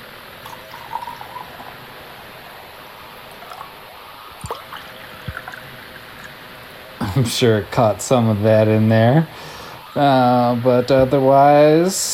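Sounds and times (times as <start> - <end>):
drink being sloppily poured into a glass: 0.4 - 7.0
speech: 7.1 - 12.1.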